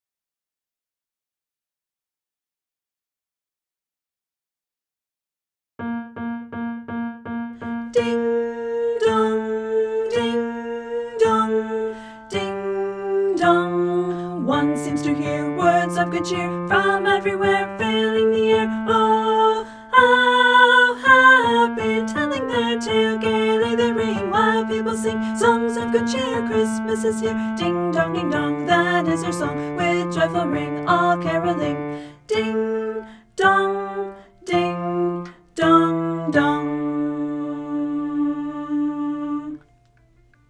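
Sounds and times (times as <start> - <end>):
tenor voice singing: 7.9 - 39.6.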